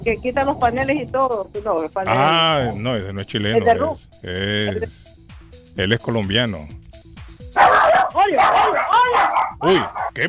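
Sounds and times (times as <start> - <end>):
people talking excitedly: 0.0 - 4.9, 7.6 - 10.2
speech: 0.0 - 5.1, 5.8 - 6.8, 7.6 - 10.2
dog barking: 2.5 - 3.0, 7.6 - 10.2
dog yelping: 7.6 - 10.2.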